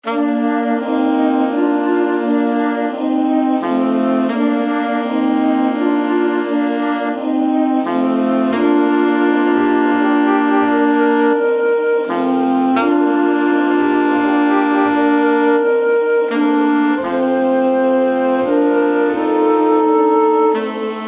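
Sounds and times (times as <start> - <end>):
woodwind melody: 0.0 - 21.0.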